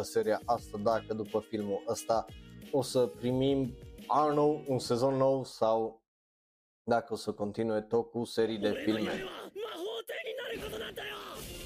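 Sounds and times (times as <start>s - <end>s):
speech: 0.0s - 6.0s, 6.9s - 9.6s
anime character yelling in a film trailer: 8.6s - 11.5s.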